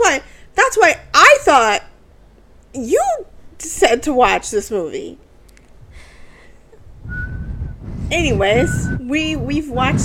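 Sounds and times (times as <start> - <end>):
soft noise: 0.0 - 10.0
speech: 0.2 - 1.9, 2.8 - 5.2, 8.1 - 10.0
person attempting to whistle: 7.1 - 7.7.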